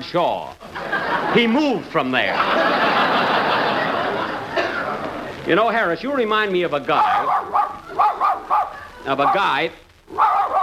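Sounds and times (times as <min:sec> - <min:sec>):
speech: 0:00.1 - 0:03.6, 0:05.5 - 0:07.4, 0:09.0 - 0:09.8
laughter: 0:00.6 - 0:05.5
dog drawn-out whining yelp: 0:07.0 - 0:09.4, 0:10.1 - 0:10.6
dog barking loudly: 0:07.0 - 0:10.6.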